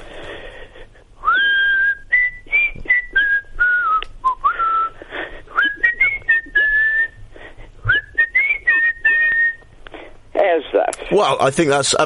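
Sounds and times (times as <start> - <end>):
man whistling a tune: 1.2 - 7.2, 7.8 - 9.7
speech: 11.1 - 12.0.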